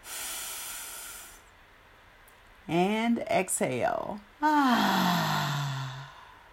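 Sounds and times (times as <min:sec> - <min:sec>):
deep inhale through the nose: 0:00.0 - 0:01.5
speech: 0:02.7 - 0:05.2.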